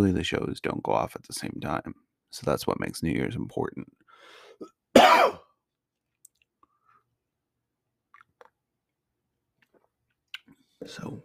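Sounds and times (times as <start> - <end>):
speech: 0.0 - 4.0, 10.8 - 11.2
harsh rasping cough after choking on water: 4.6 - 5.6.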